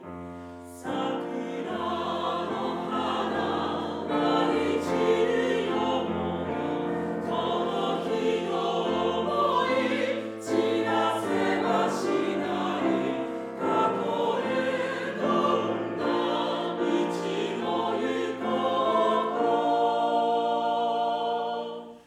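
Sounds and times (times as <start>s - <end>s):
music sample recorded on a SONY PCM-D100: 0.0s - 22.0s.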